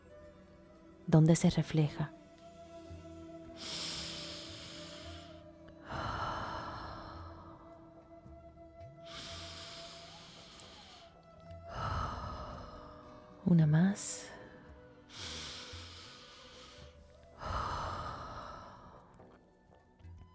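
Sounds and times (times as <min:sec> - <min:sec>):
speech: 0:01.1 - 0:02.2
slow deep breaths with airy inhales and sighing exhales: 0:02.5 - 0:07.7, 0:09.1 - 0:13.4, 0:14.3 - 0:19.4.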